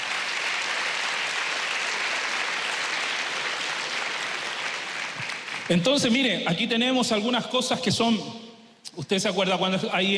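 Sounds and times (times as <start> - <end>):
audience applauding: 0.0 - 6.2
speech: 5.7 - 8.4, 9.0 - 10.1.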